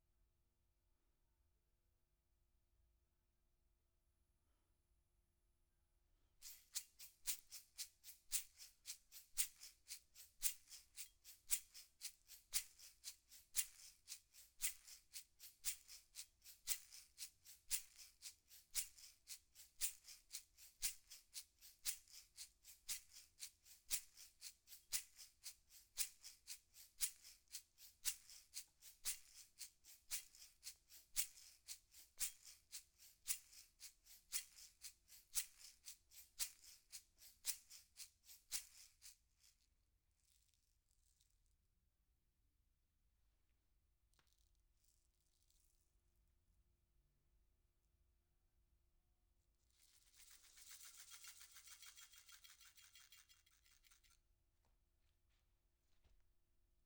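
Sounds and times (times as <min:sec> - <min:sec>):
percussion: 0:06.4 - 0:41.3, 0:49.7 - 0:54.2.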